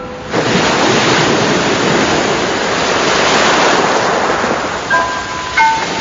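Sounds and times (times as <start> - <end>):
hollow roar of sea waves as heard inside a conch shell: 0.0 - 5.9.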